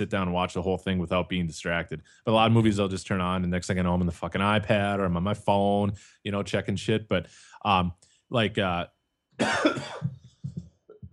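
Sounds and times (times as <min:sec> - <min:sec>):
speech: 0:00.0 - 0:10.2
person coughing: 0:09.4 - 0:11.1.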